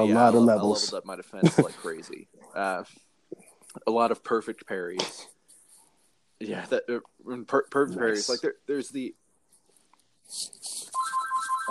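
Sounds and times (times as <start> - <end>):
speech: 0.0 - 3.1, 3.8 - 5.3, 6.4 - 9.2, 10.3 - 11.0
laughter: 1.4 - 2.2
phone ringing with a warbling electronic ringtone: 10.9 - 11.6.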